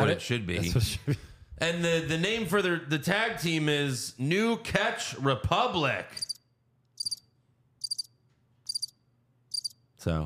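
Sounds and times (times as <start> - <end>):
speech: 0.1 - 6.3, 10.0 - 10.2
crickets chirping: 6.2 - 6.4, 7.0 - 9.8.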